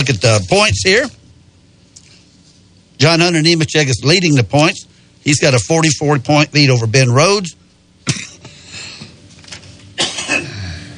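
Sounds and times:
speech: 0.0s - 1.2s, 3.0s - 8.3s
person coughing harshly: 8.0s - 8.5s, 10.0s - 10.9s.

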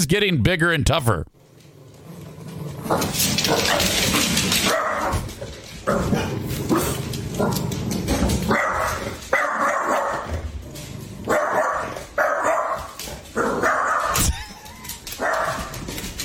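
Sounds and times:
speech: 0.0s - 1.4s, 2.9s - 7.7s
female dog barking at a watermelon: 4.6s - 5.2s, 8.5s - 10.4s, 11.3s - 14.3s, 15.2s - 15.8s.

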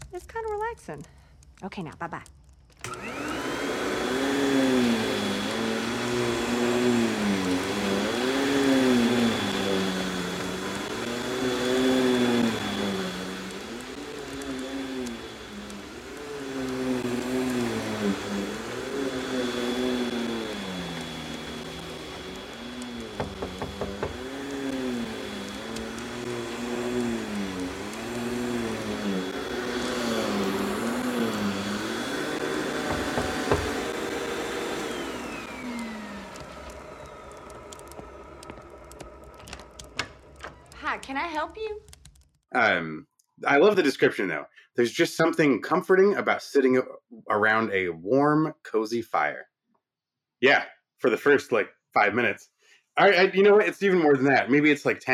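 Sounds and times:
speech: 0.1s - 3.3s, 41.1s - 41.8s, 42.5s - 49.5s, 50.4s - 55.1s
vacuum cleaner running: 2.8s - 41.4s, 53.0s - 55.1s.

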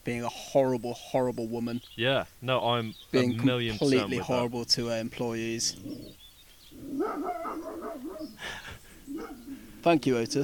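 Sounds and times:
speech: 0.0s - 6.2s, 9.8s - 10.4s
dog barking and yelping: 6.7s - 8.4s, 9.0s - 9.6s.

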